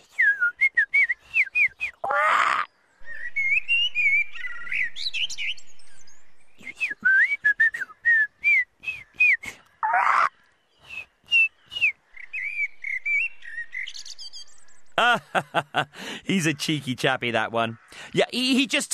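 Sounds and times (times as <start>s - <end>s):
person whistling to imitate birdsong in a garden: 0.0s - 2.1s, 3.0s - 5.6s, 6.6s - 9.7s, 10.8s - 13.4s
laughter: 15.0s - 16.0s
speech: 15.1s - 18.9s
breathy gusts: 15.9s - 16.3s.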